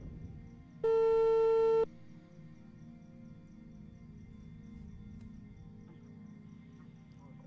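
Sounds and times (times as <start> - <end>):
electronic beep of a WhatsApp call ringing tone: 0.8 - 1.9.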